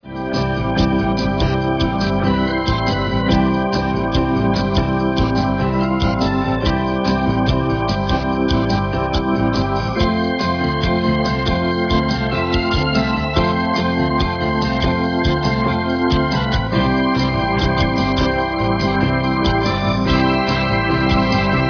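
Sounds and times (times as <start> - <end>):
Hammond organ: 0.0 - 21.6.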